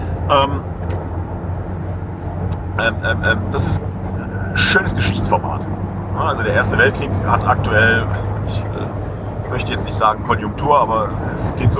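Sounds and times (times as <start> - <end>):
engine and road rumble inside a moving car overtaking a truck: 0.0 - 11.7
speech: 0.3 - 0.7, 2.8 - 3.9, 4.6 - 11.7.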